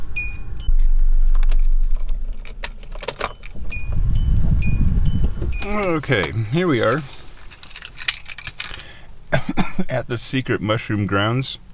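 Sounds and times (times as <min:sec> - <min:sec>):
low rumbling car engine hum: 0:00.0 - 0:11.7
car keys jangling: 0:02.0 - 0:08.8
speech: 0:05.7 - 0:07.1, 0:09.8 - 0:11.6.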